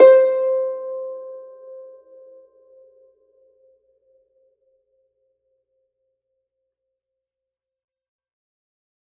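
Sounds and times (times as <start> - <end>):
harp note C4: 0.0 - 1.9.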